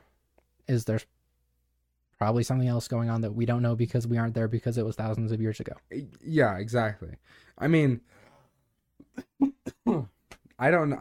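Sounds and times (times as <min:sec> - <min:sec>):
speech: 0:00.7 - 0:01.2, 0:02.2 - 0:08.2, 0:10.6 - 0:10.9
person coughing short dry coughs: 0:09.0 - 0:10.2.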